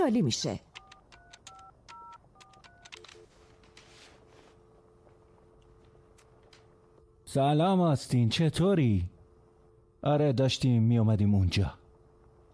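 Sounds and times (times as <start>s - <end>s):
speech: 0.0s - 0.7s, 7.3s - 9.1s, 10.0s - 11.8s
touch-tone telephone keypad beeps dialing a number: 0.8s - 3.1s
steady low telephone line tone: 0.8s - 12.5s.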